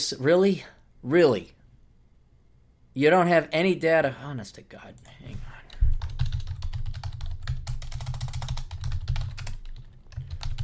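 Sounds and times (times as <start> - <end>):
speech: 0.0 - 1.6, 3.0 - 5.6
typing on a computer keyboard: 5.9 - 10.6.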